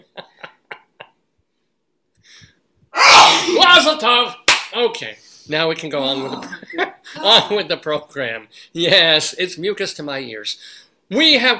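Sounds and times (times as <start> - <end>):
sharp breath catches: 2.2 - 2.6
loud explosive sneeze: 3.0 - 3.7
speech: 3.8 - 11.5.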